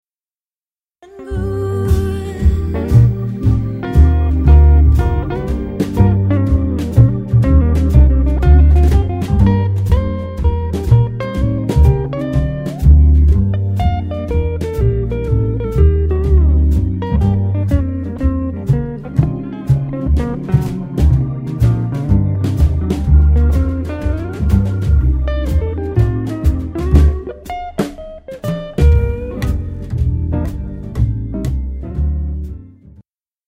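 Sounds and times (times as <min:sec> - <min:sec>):
instrumental solo: 0:01.0 - 0:32.8.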